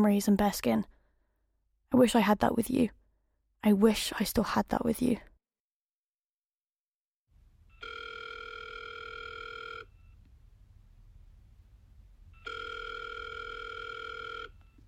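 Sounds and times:
speech: 0:00.0 - 0:01.0, 0:01.9 - 0:03.0, 0:03.6 - 0:05.3
telephone ringing before going to voicemail: 0:07.7 - 0:10.2, 0:12.3 - 0:14.8
faint low rumbling background: 0:09.9 - 0:12.5.

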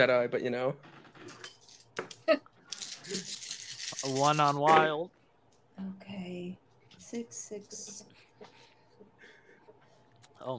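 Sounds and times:
speech: 0:00.0 - 0:01.6, 0:02.3 - 0:02.5, 0:04.0 - 0:05.2, 0:05.8 - 0:08.1, 0:10.4 - 0:10.5
dice clattering across a hard tabletop: 0:02.0 - 0:04.6.

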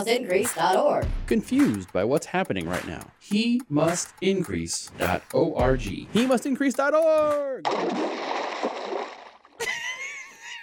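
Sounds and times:
speech: 0:00.0 - 0:08.8
water churning and bubbling: 0:07.6 - 0:09.6
splash impact: 0:07.6 - 0:09.8
person jumping into water: 0:07.6 - 0:10.0
laughter: 0:09.6 - 0:10.6.

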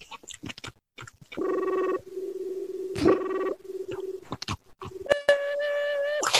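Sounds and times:
voice imitating a 28.8k dial-up modem connecting: 0:01.4 - 0:06.3.

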